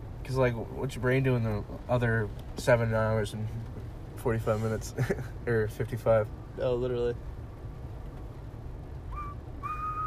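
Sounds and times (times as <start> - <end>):
low steady rumble: 0.0 - 10.0
speech: 0.3 - 7.3
person whistling two short notes: 9.1 - 10.0.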